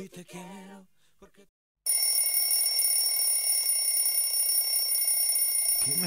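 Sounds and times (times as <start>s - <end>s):
speech: 0.0s - 1.6s, 5.8s - 6.0s
alarm clock ringing with shrill electronic tone: 1.9s - 6.0s.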